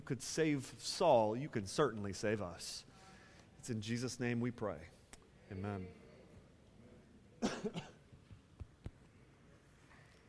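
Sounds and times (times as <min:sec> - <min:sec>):
speech: 0:00.1 - 0:02.9, 0:03.6 - 0:06.0, 0:07.4 - 0:08.0
quick harsh coughs: 0:07.4 - 0:08.0.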